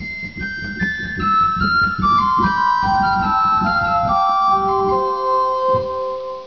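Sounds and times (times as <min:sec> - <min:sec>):
flageolet playing: 0:01.2 - 0:06.4.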